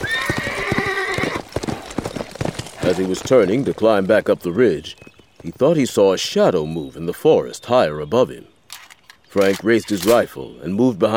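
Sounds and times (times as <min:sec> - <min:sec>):
dun gelding whinnying in a ravine: 0:00.0 - 0:01.5
dun gelding hooves clip-clopping in a ravine: 0:00.0 - 0:06.0
speech: 0:02.9 - 0:08.5, 0:09.3 - 0:11.1.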